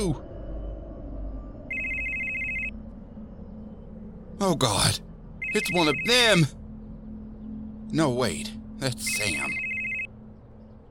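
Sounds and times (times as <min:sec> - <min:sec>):
speech: 0:00.0 - 0:00.3, 0:04.4 - 0:06.6, 0:07.9 - 0:09.6
low continuous rumble: 0:00.0 - 0:10.9
telephone bell ringing with electronic trill: 0:01.7 - 0:02.7, 0:05.4 - 0:06.2, 0:09.2 - 0:10.1.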